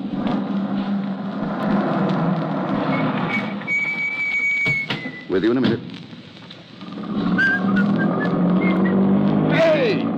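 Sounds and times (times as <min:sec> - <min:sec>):
car engine humming as the car drives away: 0:00.0 - 0:10.1
short falling squeal: 0:02.8 - 0:05.4, 0:07.2 - 0:09.1
faint whistling tones: 0:02.8 - 0:05.5, 0:07.2 - 0:09.2
speech: 0:05.3 - 0:06.1.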